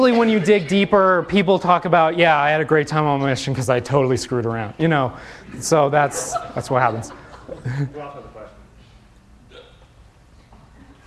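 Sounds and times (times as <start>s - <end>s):
speech: 0.0s - 8.4s
laughter: 5.8s - 8.2s
hiccup: 9.5s - 9.9s.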